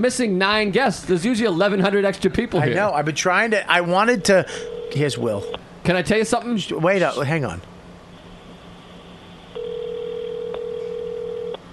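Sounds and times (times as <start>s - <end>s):
speech: 0.0s - 7.7s
quiet low hum: 0.0s - 11.7s
steady electronic telephone tone: 4.6s - 5.6s, 9.5s - 11.6s.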